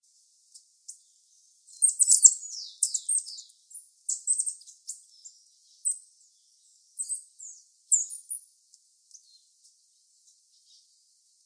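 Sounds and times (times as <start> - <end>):
bird song with twittering and buzzy chirps: 0.9 - 8.5.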